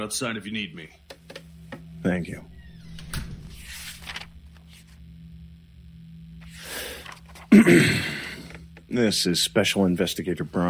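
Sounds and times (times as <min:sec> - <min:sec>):
speech: 0:00.0 - 0:01.1, 0:02.0 - 0:02.5, 0:07.5 - 0:08.2, 0:08.9 - 0:10.6
door shutting with a firm thud: 0:02.6 - 0:04.4.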